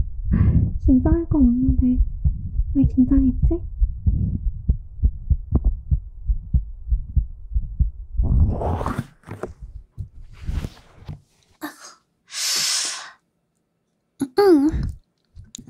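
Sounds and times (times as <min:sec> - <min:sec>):
quick steady heartbeat thumping: 0:00.0 - 0:08.7
speech: 0:00.9 - 0:02.1, 0:02.8 - 0:04.4
scattered rustles: 0:08.5 - 0:11.6.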